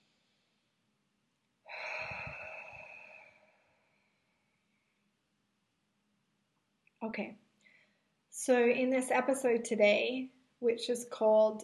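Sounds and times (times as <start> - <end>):
big deep breath: 1.7 - 4.5
speech: 7.0 - 7.4, 8.3 - 11.6.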